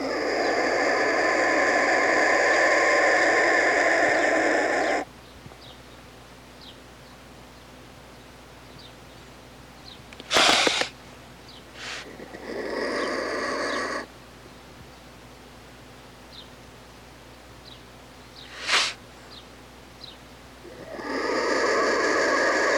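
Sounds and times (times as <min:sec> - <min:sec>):
black vulture hissing: 0:00.0 - 0:05.1, 0:10.2 - 0:10.9, 0:11.8 - 0:14.1, 0:18.4 - 0:19.0, 0:20.6 - 0:22.7.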